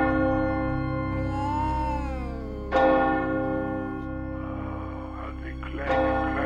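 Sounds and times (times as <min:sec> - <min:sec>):
church bells rung by pulling a rope: 0:00.0 - 0:06.4
wavering tone rising and falling: 0:01.1 - 0:05.1.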